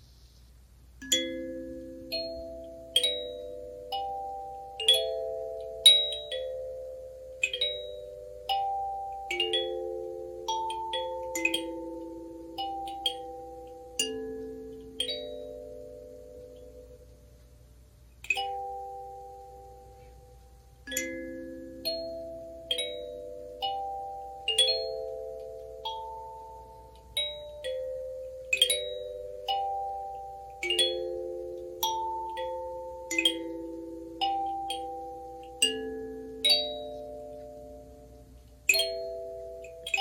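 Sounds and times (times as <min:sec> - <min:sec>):
very slow classical melody plucked on a kalimba: 0:01.0 - 0:17.6, 0:18.2 - 0:39.9.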